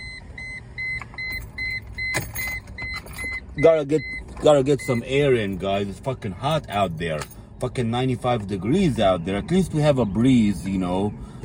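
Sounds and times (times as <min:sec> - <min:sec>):
car electronic warning chime beeping: 0:00.0 - 0:05.2
car engine low idling rumble: 0:00.0 - 0:11.4
speech: 0:03.6 - 0:11.4.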